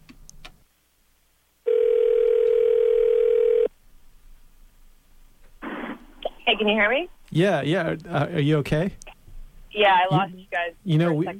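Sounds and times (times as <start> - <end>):
steady mid-pitched telephone tone while calling back a dropped line: 1.6 - 3.7
speech: 6.6 - 9.0, 9.8 - 11.3.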